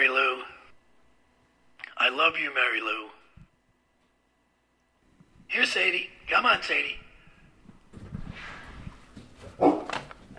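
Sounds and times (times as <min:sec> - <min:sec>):
low noise: 0:00.0 - 0:10.3
speech: 0:02.1 - 0:03.2, 0:05.5 - 0:07.0
shuffling: 0:07.5 - 0:10.3
dog barking: 0:09.6 - 0:10.0.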